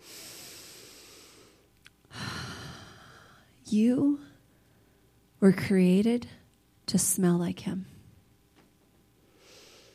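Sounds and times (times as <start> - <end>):
deep breath in: 0.0 - 3.5, 9.3 - 9.9
speech: 3.7 - 4.3, 5.4 - 7.9.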